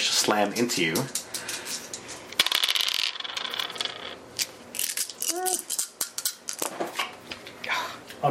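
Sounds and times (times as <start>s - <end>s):
speech: 0.2s - 1.2s
dice clattering across a hard surface: 1.3s - 6.7s.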